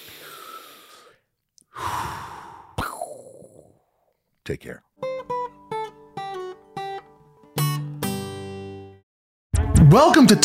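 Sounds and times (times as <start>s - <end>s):
deep breathing with slow full breaths and airy sighing exhales: 0.0s - 3.7s
speech: 4.5s - 4.9s, 9.9s - 10.4s.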